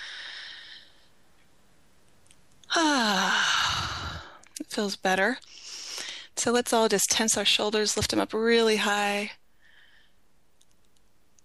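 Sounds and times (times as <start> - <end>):
deep breath exhaling and inhaling: 0.0 - 1.1, 3.2 - 4.5, 9.6 - 10.2
speech: 4.7 - 5.5, 6.4 - 9.4.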